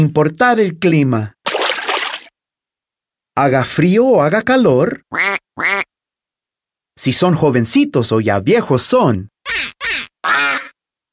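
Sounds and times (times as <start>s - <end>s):
speech: 0.0s - 1.4s, 3.4s - 5.7s, 7.0s - 9.6s
ducks quacking: 9.5s - 10.7s.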